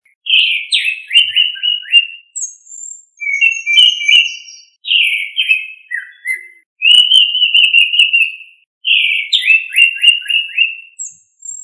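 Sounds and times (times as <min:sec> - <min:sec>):
bird song of whistled phrases in Indonesia: 0:00.1 - 0:11.6.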